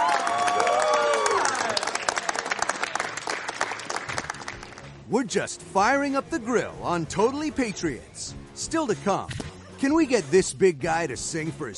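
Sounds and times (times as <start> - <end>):
voices whooping and cheering: 0.0 - 2.0
crowd applauding: 0.0 - 5.0
speech: 5.1 - 11.7.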